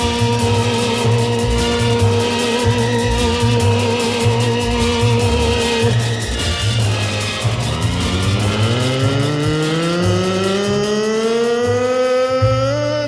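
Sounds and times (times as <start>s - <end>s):
car engine revving: 0.0s - 12.9s
loud continuous engine roar of city traffic: 4.3s - 12.2s.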